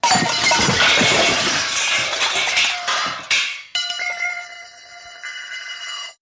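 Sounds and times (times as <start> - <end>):
comical crash spin: 0.0 - 6.2.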